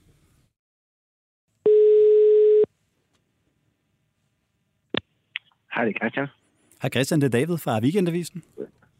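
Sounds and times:
telephone ringing tone before call connects: 0:01.7 - 0:02.7
speech: 0:05.8 - 0:08.8.

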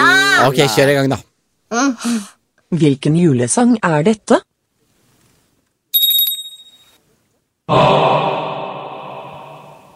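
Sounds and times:
speech: 0:00.4 - 0:04.5, 0:07.7 - 0:08.4
bright high bell ringing in a rattling trill: 0:06.0 - 0:07.0.

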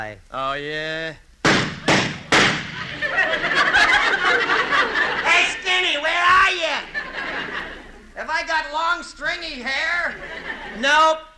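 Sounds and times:
speech: 0:00.0 - 0:02.2, 0:08.2 - 0:11.3
gunshots from a gun: 0:01.4 - 0:03.1
laughter: 0:02.6 - 0:08.4, 0:09.8 - 0:11.1.

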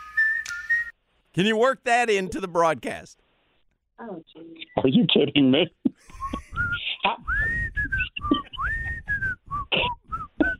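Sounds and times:
person whistling a bouncy tune: 0:00.0 - 0:01.0, 0:06.0 - 0:10.5
speech: 0:01.4 - 0:03.2, 0:04.0 - 0:06.3.

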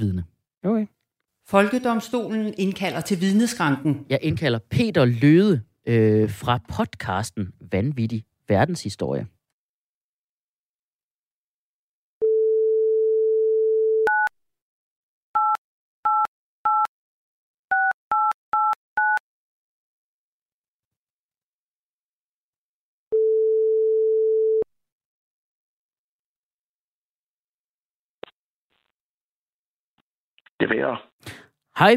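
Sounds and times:
speech: 0:00.0 - 0:09.4, 0:30.6 - 0:31.9
telephone ringing tone: 0:12.2 - 0:14.3, 0:23.1 - 0:24.7
telephone keypad dialing beeps: 0:15.4 - 0:16.9, 0:17.7 - 0:19.2.

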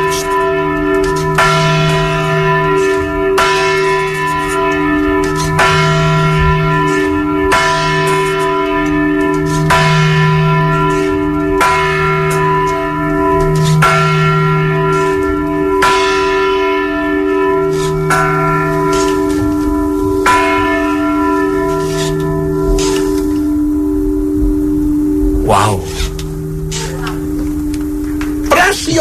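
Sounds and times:
single church bell tolling: 0:00.0 - 0:28.9.

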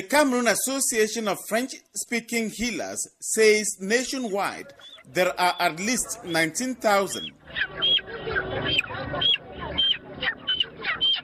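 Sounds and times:
speech: 0:00.1 - 0:08.0
chickens clucking and squawking: 0:04.4 - 0:11.2
steady murmur: 0:04.5 - 0:11.2.

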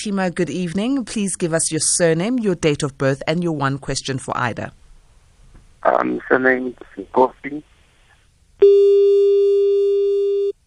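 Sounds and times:
speech: 0:00.0 - 0:04.8, 0:05.8 - 0:07.7, 0:08.6 - 0:10.0
telephone busy tone after a dropped call: 0:08.6 - 0:10.6.

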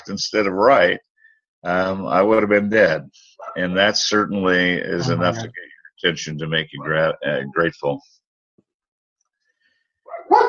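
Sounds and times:
speech: 0:00.0 - 0:08.2, 0:10.1 - 0:10.4
dogs barking: 0:03.3 - 0:03.8, 0:06.7 - 0:07.2, 0:10.0 - 0:10.4
dog yelp: 0:03.4 - 0:03.6, 0:10.1 - 0:10.4.

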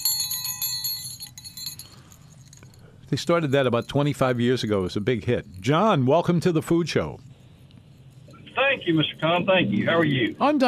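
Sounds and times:
small hand bell ringing: 0:00.0 - 0:02.9
speech: 0:03.1 - 0:07.3, 0:08.8 - 0:10.6.

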